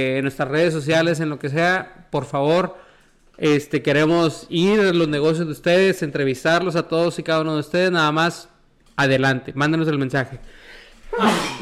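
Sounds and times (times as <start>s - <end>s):
speech: 0.0s - 2.8s, 3.4s - 11.5s
quiet inhale: 2.8s - 3.3s, 10.4s - 11.1s
person sneezing: 11.0s - 11.5s.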